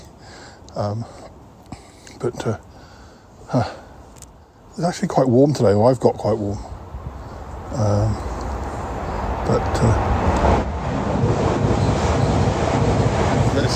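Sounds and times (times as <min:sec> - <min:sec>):
speech: 0:00.7 - 0:01.3, 0:02.2 - 0:02.7, 0:03.5 - 0:03.8, 0:04.8 - 0:06.7, 0:07.7 - 0:08.3, 0:09.5 - 0:10.1
gusty wind buffeting the microphone outdoors: 0:06.5 - 0:13.7
train rumbling along a railway line: 0:07.6 - 0:13.7.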